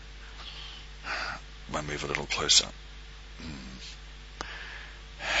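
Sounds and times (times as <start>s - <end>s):
deep inhale with sniffing of perfume and hair scent: 0.2s - 1.4s, 3.8s - 5.3s
speech: 1.7s - 3.6s.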